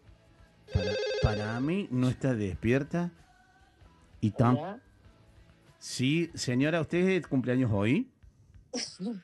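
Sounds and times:
telephone call tone while a number is being called: 0.7s - 1.7s
speech: 0.7s - 3.3s, 4.2s - 4.9s, 5.8s - 8.1s, 8.7s - 9.2s.

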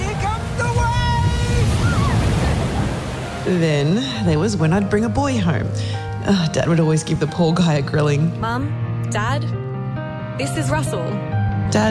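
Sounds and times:
ocean surf washing in: 0.0s - 4.3s
speech: 3.5s - 9.6s, 10.4s - 11.8s.

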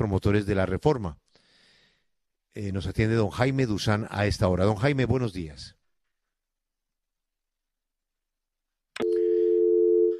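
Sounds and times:
speech: 0.0s - 1.2s, 2.6s - 5.8s
phone tone marking a dropped call: 9.0s - 10.1s.

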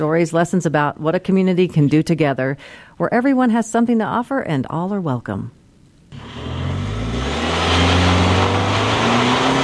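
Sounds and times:
speech: 0.0s - 6.3s
side-by-side engine revving in Center Creek Canyon Utah: 6.1s - 9.6s.

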